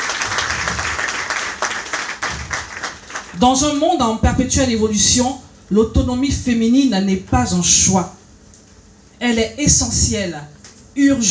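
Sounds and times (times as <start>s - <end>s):
audience applause: 0.0s - 3.4s
speech: 3.4s - 8.2s, 9.2s - 11.3s.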